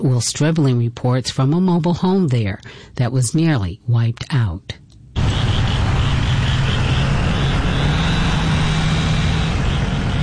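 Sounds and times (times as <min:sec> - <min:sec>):
speech: 0:00.0 - 0:04.8
saws whining at tornado cleanup: 0:05.2 - 0:10.2
truck engines droning at tornado cleanup: 0:05.2 - 0:10.2.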